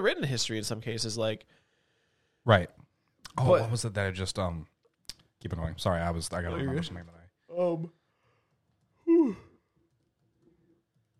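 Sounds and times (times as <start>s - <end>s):
speech: 0.0s - 1.6s, 2.4s - 2.8s, 3.4s - 4.7s, 5.4s - 8.0s, 9.2s - 9.4s
big voiced yawn: 9.0s - 9.6s.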